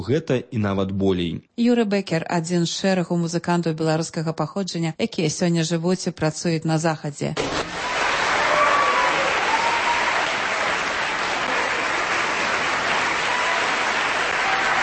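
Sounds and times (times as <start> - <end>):
speech: 0.0 - 7.9
audience applause for a pianist in a concert hall chamber hall: 7.4 - 14.8.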